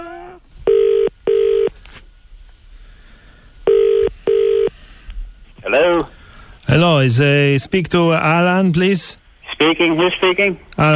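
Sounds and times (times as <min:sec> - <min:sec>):
double-burr telephone ringing tone heard down the line: 0:00.7 - 0:01.7, 0:03.7 - 0:04.7
speech: 0:06.7 - 0:10.9.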